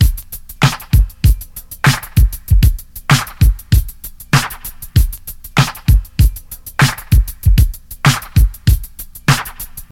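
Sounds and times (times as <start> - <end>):
2000s style drum loop with kick tuned to G sharp: 0.0 - 9.9.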